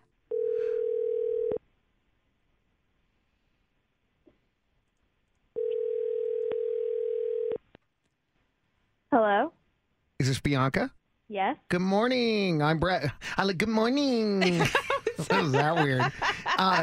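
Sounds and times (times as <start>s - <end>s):
ringback tone of an outgoing telephone call: 0.3s - 1.6s, 5.6s - 7.6s
speech: 10.2s - 16.8s
laughter: 14.1s - 16.8s.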